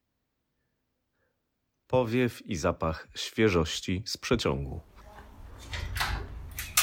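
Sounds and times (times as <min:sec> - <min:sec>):
speech: 0:01.9 - 0:04.9
door swinging open with a soft scraping rush: 0:04.9 - 0:06.8.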